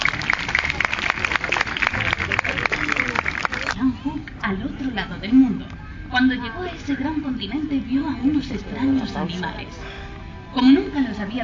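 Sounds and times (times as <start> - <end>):
crowd applauding an owl after its flight: 0.0 - 3.8
speech: 4.6 - 5.5, 6.2 - 9.9, 10.6 - 11.4.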